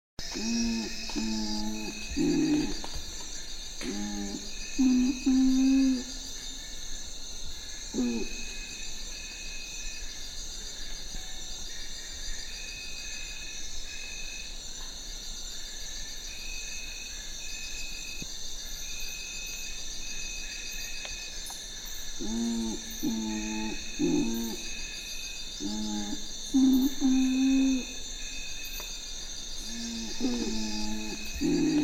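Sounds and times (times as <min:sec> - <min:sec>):
urumutum calling: 0:00.3 - 0:03.0, 0:03.8 - 0:06.1, 0:22.2 - 0:24.7, 0:25.6 - 0:27.9, 0:29.7 - 0:31.8.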